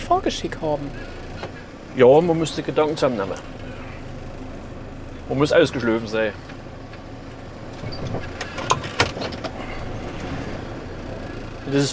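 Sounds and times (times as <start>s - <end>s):
snow-clearing vehicle engine rumbling on a turning area: 0.0s - 11.9s
speech: 0.1s - 3.6s, 5.3s - 6.5s, 11.7s - 11.9s
snow-clearing vehicle metallic clanks and knocks while maneuvering: 7.7s - 10.4s.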